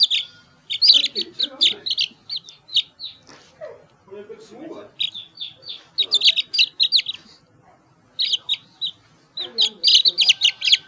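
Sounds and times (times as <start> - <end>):
chicken chick chirping: 0.0 - 3.4, 4.9 - 7.4, 8.2 - 10.8.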